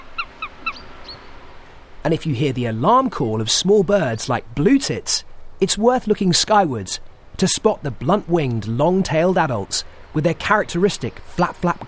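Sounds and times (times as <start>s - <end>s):
Eurasian sparrowhawk sharp falling kew calls: 0.0s - 1.3s
quiet background noise: 0.0s - 11.8s
speech: 2.0s - 11.8s.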